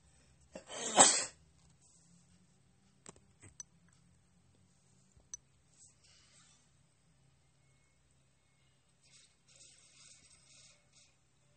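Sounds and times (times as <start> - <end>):
loud sneeze: 0.6 - 1.4.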